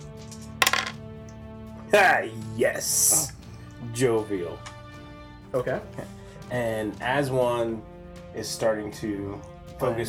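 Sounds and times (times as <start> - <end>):
dice rolling on a table during a tabletop game: 0.4 - 1.0
speech: 1.9 - 4.8, 5.5 - 10.0.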